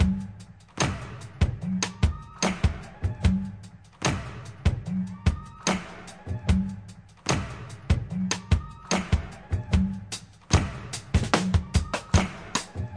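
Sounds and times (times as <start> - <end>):
weird busy drum loops and breaks at 74 bpm: 0.0 - 12.9.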